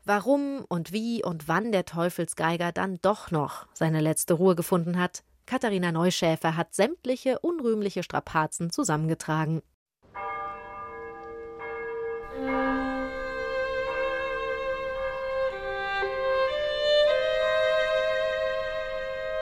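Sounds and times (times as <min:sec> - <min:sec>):
speech: 0:00.1 - 0:10.3
several church bells pealing: 0:10.1 - 0:19.3.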